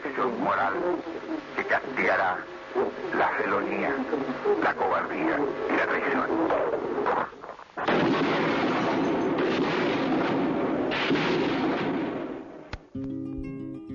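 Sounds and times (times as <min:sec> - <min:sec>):
speech: 0:00.2 - 0:08.5
rattling gunfire in archival radio broadcast: 0:07.8 - 0:12.2
heavy explosions in archival radio broadcast: 0:07.8 - 0:12.7.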